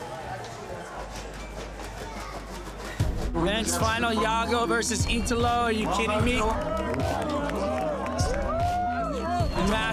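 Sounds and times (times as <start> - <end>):
speech: 3.4 - 7.1, 9.7 - 9.9
large crowd cheering at a surfing contest men's final: 6.4 - 9.9.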